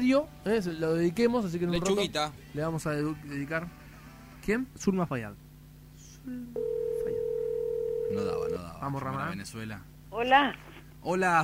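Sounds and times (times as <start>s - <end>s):
speech: 0.0s - 3.8s, 4.5s - 5.4s, 6.2s - 6.8s, 8.1s - 11.4s
steady mid-pitched telephone tone on an outgoing call: 6.6s - 8.6s
telephone line hum and click on an outgoing call: 6.6s - 8.6s.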